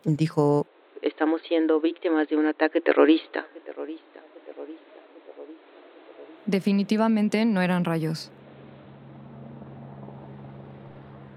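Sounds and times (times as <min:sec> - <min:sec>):
speech: 0:00.0 - 0:04.2, 0:06.4 - 0:08.4
helicopter droning: 0:06.5 - 0:11.3.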